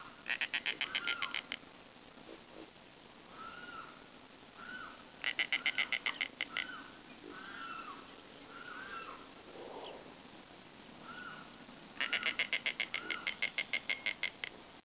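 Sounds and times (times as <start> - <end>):
background noise: 0.0 - 14.8
bird rattling calls: 0.3 - 1.6, 4.6 - 9.2, 12.0 - 14.5.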